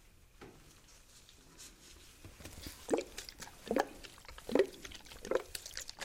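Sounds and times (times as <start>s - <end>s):
cleansing water squirting while cleaning a person's face: 2.5s - 6.0s.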